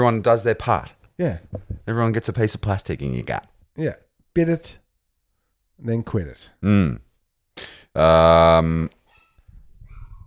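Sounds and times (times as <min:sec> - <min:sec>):
speech: 0:00.0 - 0:04.8, 0:05.8 - 0:07.0, 0:07.6 - 0:09.0
dog barking: 0:09.1 - 0:10.2.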